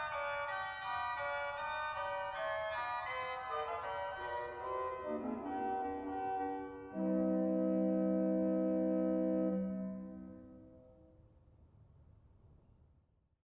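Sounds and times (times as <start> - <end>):
Cornett 4f organ stop: 0.1 - 10.7.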